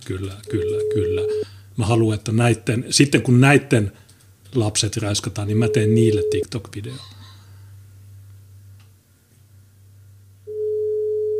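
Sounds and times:
speech: 0:00.1 - 0:07.2
telephone busy tone beep on an unanswered call: 0:00.5 - 0:01.4, 0:05.6 - 0:06.4, 0:10.5 - 0:11.3
faint hiss on a telephone line: 0:00.5 - 0:01.6, 0:05.5 - 0:06.5, 0:10.5 - 0:11.3.

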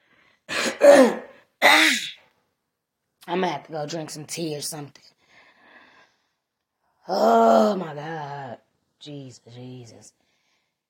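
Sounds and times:
person clearing throat: 0:00.5 - 0:02.2
speech: 0:00.8 - 0:01.2, 0:03.3 - 0:05.2, 0:07.1 - 0:10.2.

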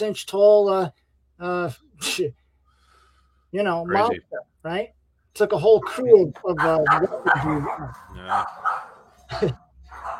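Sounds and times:
speech: 0:00.0 - 0:02.4, 0:03.5 - 0:10.1
dogs barking: 0:05.7 - 0:09.2, 0:09.8 - 0:10.1.

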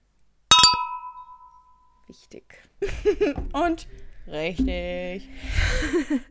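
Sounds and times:
glasses clinking in a toast: 0:00.5 - 0:01.8
speech: 0:02.1 - 0:06.3
laughter: 0:02.8 - 0:03.4, 0:05.6 - 0:06.3.

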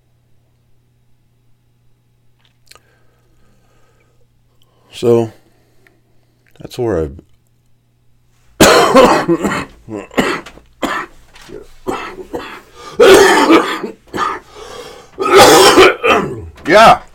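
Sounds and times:
speech: 0:05.0 - 0:05.4, 0:06.6 - 0:07.3, 0:09.3 - 0:10.5, 0:16.7 - 0:17.0
throat-clearing bursts: 0:08.6 - 0:14.5, 0:15.2 - 0:16.7
man's harsh raspy coughing fit: 0:08.6 - 0:17.0.

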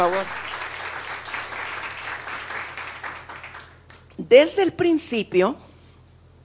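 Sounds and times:
speech: 0:00.0 - 0:00.5, 0:04.3 - 0:05.7
church audience applauding: 0:00.0 - 0:04.1.

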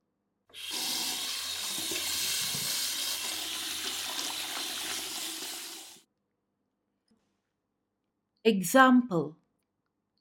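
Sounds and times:
water running from a tap for washing: 0:00.6 - 0:06.1
speech: 0:08.4 - 0:09.4.

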